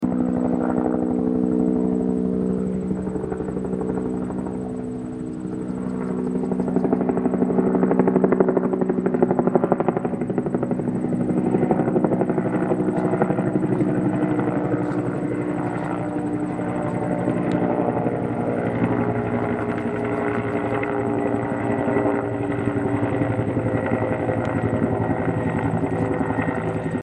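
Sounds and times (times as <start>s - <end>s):
helicopter flyby: 0.0s - 27.0s.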